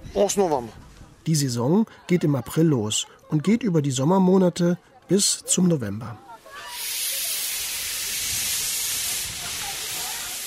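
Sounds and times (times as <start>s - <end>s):
speech: 0.2s - 6.3s
historic steam locomotive hissing on the Channel coast: 6.5s - 10.4s.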